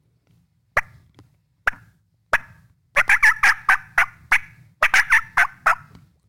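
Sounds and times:
hen turkey cutting call with clucks and yelps: 0:01.7 - 0:05.9.

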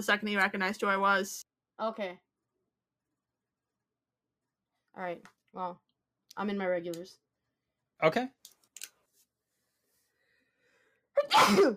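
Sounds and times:
speech: 0:00.0 - 0:02.2, 0:05.0 - 0:05.8, 0:06.4 - 0:07.2, 0:08.0 - 0:08.6, 0:11.2 - 0:11.7
person sneezing: 0:11.2 - 0:11.7.

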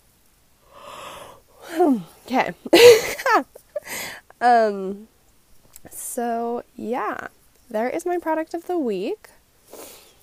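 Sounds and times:
person yawning: 0:00.7 - 0:01.9
speech: 0:01.9 - 0:05.1, 0:05.8 - 0:09.4.

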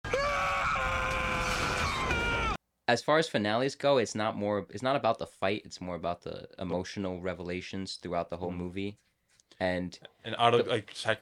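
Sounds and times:
male movie villain screaming: 0:00.0 - 0:02.6
speech: 0:02.9 - 0:11.2.

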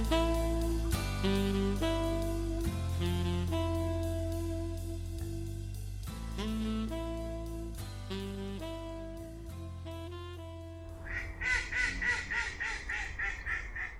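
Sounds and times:
gentle keyboard-like music: 0:00.0 - 0:13.9
mallard duck quacking: 0:10.9 - 0:13.9.

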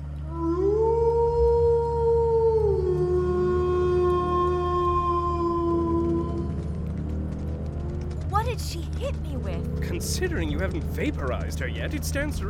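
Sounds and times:
low constant rumble: 0:00.0 - 0:12.4
large wolf howling while pursuing a van: 0:00.2 - 0:07.2
speech: 0:09.1 - 0:12.4.

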